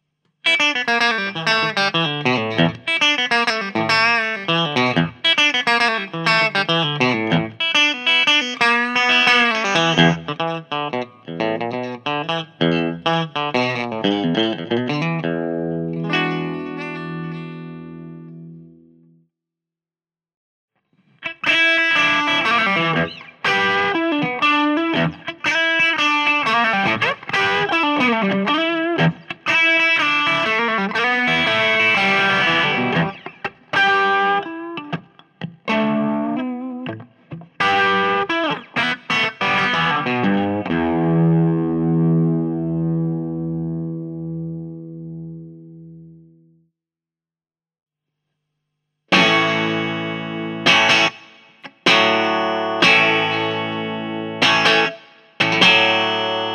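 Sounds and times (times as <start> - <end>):
Strat electric guitar bridge pickup: 0.5 - 18.9, 21.1 - 46.3, 49.1 - 56.5.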